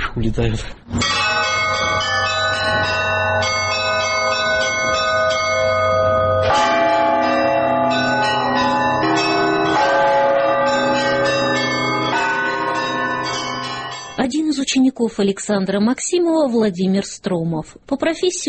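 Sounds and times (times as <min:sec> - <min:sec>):
speech: 0:00.2 - 0:01.8, 0:14.8 - 0:18.4
deep blagovest church bell struck steadily: 0:01.0 - 0:14.2.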